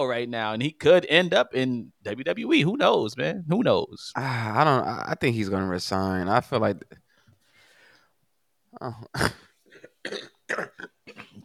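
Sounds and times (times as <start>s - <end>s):
speech: 0.0s - 7.0s, 8.8s - 9.4s, 10.0s - 11.4s
sick man in a heavy coughing fit: 8.8s - 11.4s.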